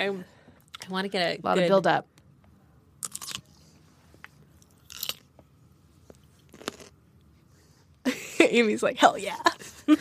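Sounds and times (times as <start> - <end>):
speech: 0.0 - 2.1, 8.5 - 9.9
crunchy pickle being bitten and chewed: 3.0 - 3.5, 4.6 - 5.4, 6.1 - 7.0.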